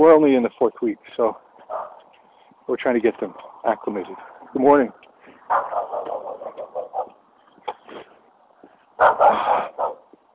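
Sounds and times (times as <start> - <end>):
speech: 0.0 - 1.5, 2.7 - 6.3
small dog yapping: 1.7 - 2.0, 5.5 - 7.2, 9.0 - 10.1.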